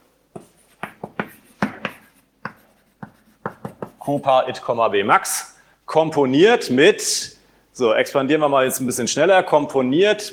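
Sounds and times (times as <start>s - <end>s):
pen or marker strokes on a board during a maths lecture: 0.4s - 4.3s
speech: 4.1s - 10.3s.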